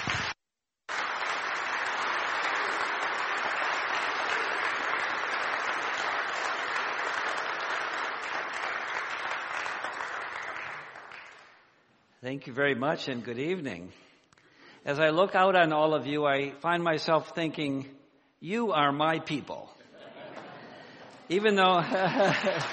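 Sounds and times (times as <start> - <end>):
audience applause: 0.0 - 11.6, 21.7 - 22.7
speech: 12.2 - 14.0, 14.8 - 19.7, 21.3 - 22.7
laughter: 19.8 - 22.7.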